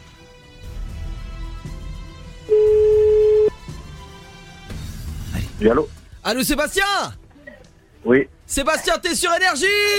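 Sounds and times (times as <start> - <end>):
telephone ringback tone as a call is placed: 2.5 - 3.6
speech: 5.6 - 7.2, 8.0 - 9.9.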